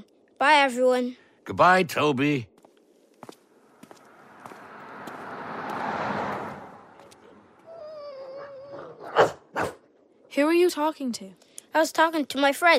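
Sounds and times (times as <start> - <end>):
speech: 0.4 - 2.5, 10.4 - 12.7
soft footsteps: 2.5 - 7.3
passing whooshing swell: 4.0 - 7.6
dog whining: 7.6 - 9.7
dog barking: 9.0 - 9.9.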